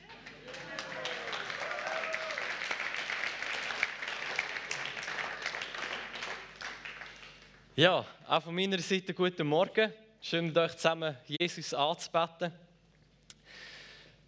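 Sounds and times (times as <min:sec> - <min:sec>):
audience applause: 0:00.0 - 0:07.6
faint voices and cheers: 0:00.4 - 0:02.6
speech: 0:07.8 - 0:12.7.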